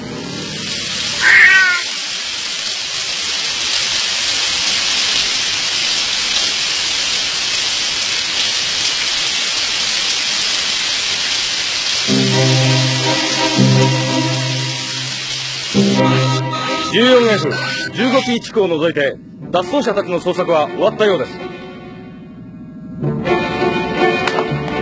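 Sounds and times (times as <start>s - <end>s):
dense acid rain hissing: 0.0s - 19.1s
low droning tone: 13.6s - 23.7s
speech: 17.0s - 21.4s.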